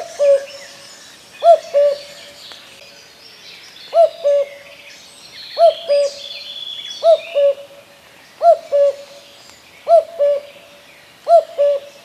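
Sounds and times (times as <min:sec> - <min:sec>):
Common cuckoo calling: 0:00.0 - 0:00.8, 0:01.4 - 0:02.6, 0:03.9 - 0:04.7, 0:05.6 - 0:07.8, 0:08.4 - 0:09.2, 0:09.8 - 0:12.0
small songbirds twittering: 0:00.0 - 0:12.0.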